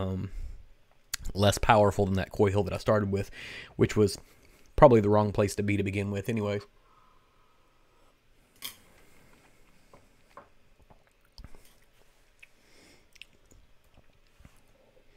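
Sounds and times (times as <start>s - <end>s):
speech: 0.0s - 0.4s, 1.2s - 6.8s
faint wet lip smacking: 10.8s - 14.6s.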